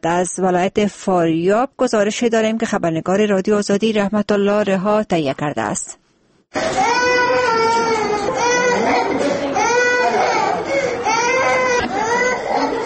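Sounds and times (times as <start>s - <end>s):
speech: 0.0s - 7.2s
children crying while brought to a hospital for vaccination: 6.6s - 12.8s.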